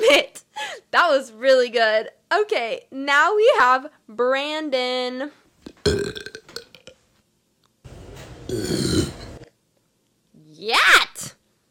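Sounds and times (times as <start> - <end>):
speech: 0.1 - 6.3, 10.6 - 11.1
person burping: 5.7 - 7.0, 8.5 - 9.4.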